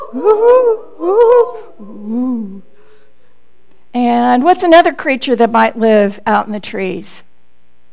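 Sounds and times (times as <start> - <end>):
human voices imitating owl hoots: 0.0 - 2.8
speech: 0.1 - 2.7, 3.9 - 7.3.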